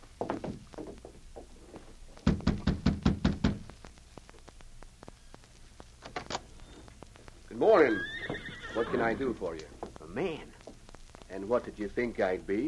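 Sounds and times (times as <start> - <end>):
knocking on a door: 2.2 - 3.7
speech: 7.6 - 8.1, 8.8 - 10.6, 11.3 - 12.6.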